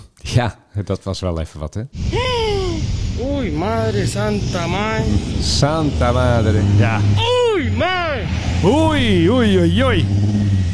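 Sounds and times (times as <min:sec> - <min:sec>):
speech: 0:00.4 - 0:02.2, 0:03.4 - 0:10.4
fire engine revving its motor: 0:02.0 - 0:10.7
person exclaiming and crying out: 0:02.1 - 0:03.5, 0:07.0 - 0:08.3.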